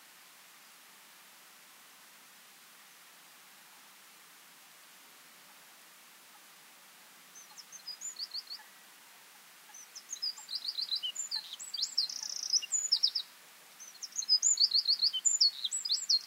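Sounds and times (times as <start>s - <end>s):
faint background hiss: 0.0s - 16.2s
Eurasian wren singing high fast trilled phrases, Troglodytes troglodytes: 7.4s - 8.6s, 9.7s - 16.2s.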